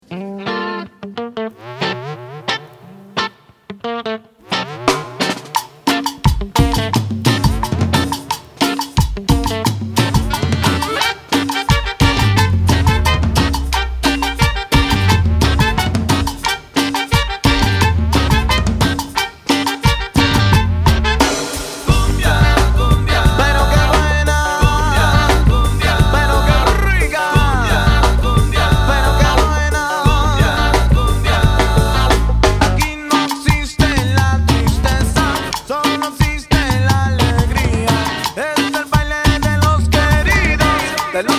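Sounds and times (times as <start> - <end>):
cumbia music: 1.5 - 3.5, 4.4 - 41.3
male vocalists singing cumbia: 21.9 - 41.3.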